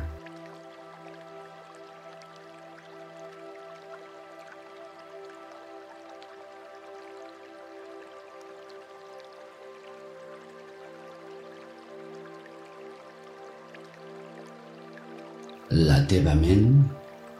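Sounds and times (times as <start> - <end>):
humming tonal drone: 0.0 - 0.2
water dripping: 0.0 - 15.8, 16.4 - 17.3
speech: 15.7 - 17.0.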